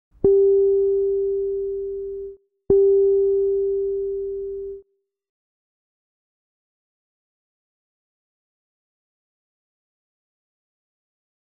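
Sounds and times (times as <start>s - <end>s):
bass thumb harmonics: 0.2s - 4.8s.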